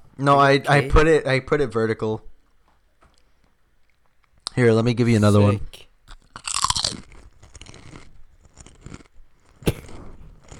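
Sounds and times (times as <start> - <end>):
speech: 0.2 - 2.3, 4.6 - 5.9
potato chip being crunched: 6.1 - 10.5.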